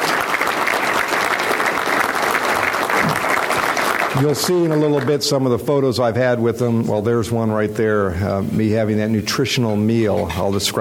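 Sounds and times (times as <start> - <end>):
room full of people applauding: 0.0 - 5.4
speech: 4.2 - 10.7.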